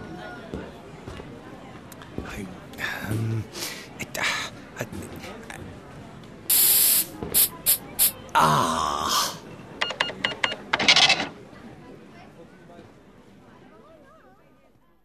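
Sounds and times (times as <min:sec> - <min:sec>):
low noise: 0:00.0 - 0:15.0
speech: 0:02.2 - 0:05.9, 0:07.2 - 0:07.6
can of insect spray hissing: 0:06.5 - 0:08.2.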